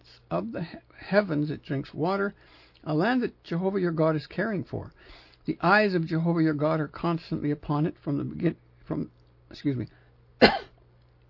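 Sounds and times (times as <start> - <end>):
faint low hum: 0.0 - 11.2
speech: 0.3 - 10.7
person coughing and clearing throat from coconut stuck in throat: 10.4 - 10.8.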